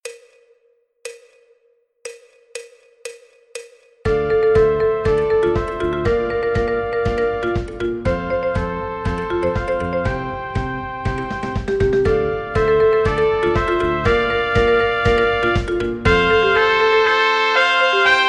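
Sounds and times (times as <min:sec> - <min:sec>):
fast string melody instruments: 0:04.1 - 0:18.2.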